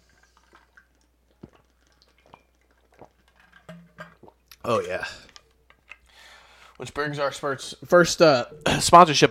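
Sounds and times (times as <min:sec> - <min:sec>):
person sipping and swallowing water: 0:00.0 - 0:06.8
speech: 0:04.6 - 0:05.3, 0:06.8 - 0:09.3.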